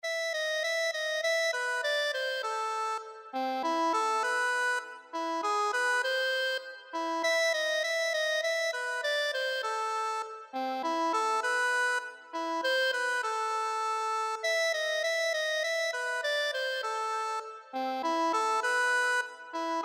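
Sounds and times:
accordion playing a classical piano piece: 0.0 - 19.8.

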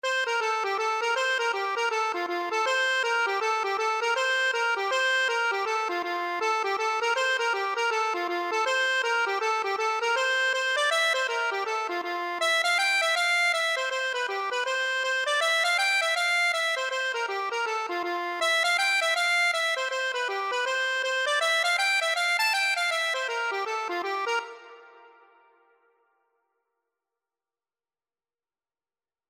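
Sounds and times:
accordion: 0.0 - 25.5.

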